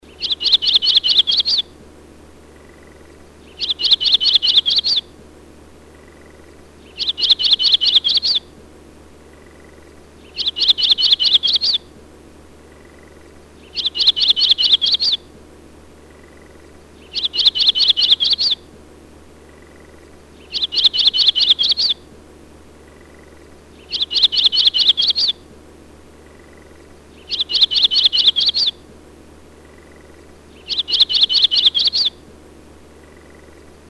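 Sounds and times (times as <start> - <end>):
Audubon's yellow-rumped warbler: 0.0 - 1.7, 2.7 - 5.1, 6.0 - 8.5, 9.4 - 11.9, 12.8 - 15.3, 16.1 - 18.7, 19.7 - 22.1, 22.9 - 25.5, 26.3 - 28.9, 29.8 - 32.2.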